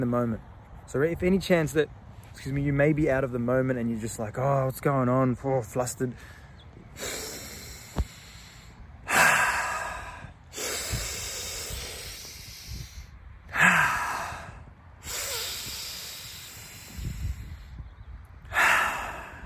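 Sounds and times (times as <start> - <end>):
speech: 0.0 - 6.4
slow deliberate conscious deep breathing: 6.1 - 19.4.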